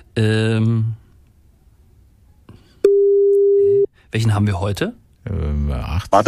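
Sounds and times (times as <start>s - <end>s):
speech: 0.2s - 1.0s, 4.1s - 6.2s
loud buzzy telephone tone: 2.8s - 3.9s.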